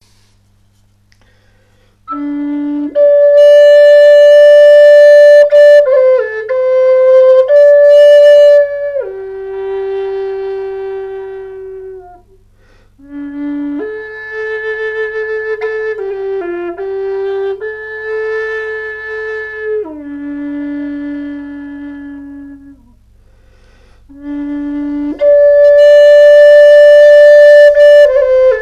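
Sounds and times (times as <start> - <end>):
low D Amerindian bamboo flute: 2.0 - 28.6.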